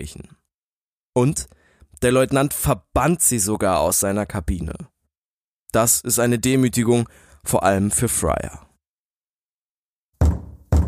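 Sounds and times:
speech: 0.0s - 0.4s, 1.2s - 4.9s, 5.7s - 8.7s
knocking on a ship's cabin door: 10.2s - 10.8s.

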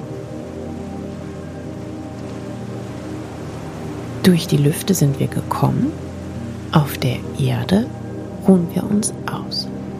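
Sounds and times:
gentle ocean waves washing on a shore: 0.0s - 9.9s
speech: 4.2s - 6.1s, 6.7s - 9.7s.

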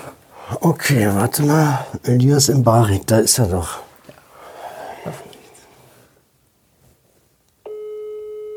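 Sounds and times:
speech: 0.1s - 3.8s, 5.0s - 5.2s
telephone ringing tone while calling someone: 7.7s - 8.5s.

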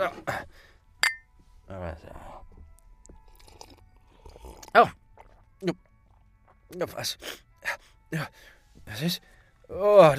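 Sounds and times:
glasses clinking in a toast: 1.0s - 1.3s
soft sounds of drinking or handling: 2.1s - 7.4s
speech: 4.7s - 5.0s, 5.6s - 5.8s, 6.7s - 10.1s.

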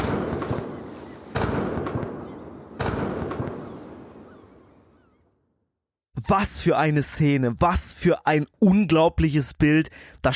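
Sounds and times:
cannon shots fired in salute by the Dutch in Timor: 0.0s - 4.4s
speech: 6.2s - 10.3s.

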